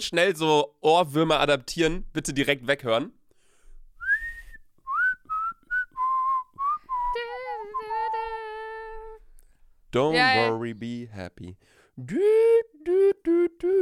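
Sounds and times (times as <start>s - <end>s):
speech: 0.0s - 3.2s, 9.9s - 13.8s
person whistling a short bouncy tune: 4.0s - 8.5s, 12.1s - 13.8s.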